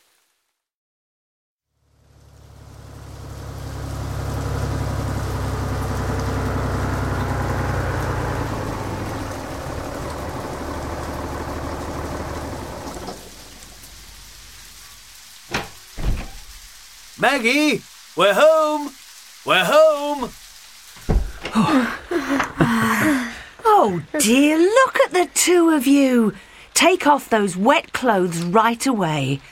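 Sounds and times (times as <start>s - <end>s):
rain-like hiss: 0.0s - 0.7s, 1.7s - 29.5s
tractor engine chugging: 2.2s - 15.0s
speech: 17.2s - 20.4s, 21.6s - 23.2s, 23.8s - 29.5s
sharp thuds: 21.0s - 21.5s.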